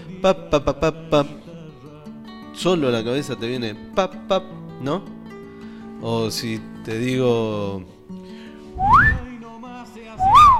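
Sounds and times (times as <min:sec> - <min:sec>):
speech: 0:00.2 - 0:01.4, 0:02.6 - 0:05.2, 0:06.0 - 0:08.0, 0:08.8 - 0:09.2
person whistling sliding tones: 0:08.7 - 0:09.4, 0:10.2 - 0:10.5.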